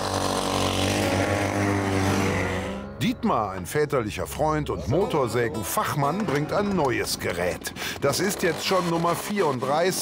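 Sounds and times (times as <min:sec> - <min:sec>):
engine of an extravagant homemade motorized bike running on fresh fuel: 0:00.0 - 0:02.9
speech: 0:03.2 - 0:10.0.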